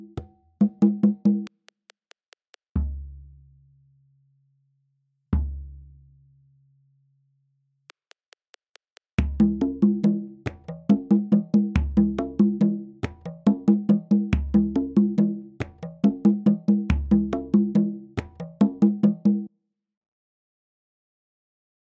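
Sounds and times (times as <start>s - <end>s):
Baakisimba drumming rhythm at 140 bpm from Africa: 0.6s - 2.8s, 8.1s - 19.5s.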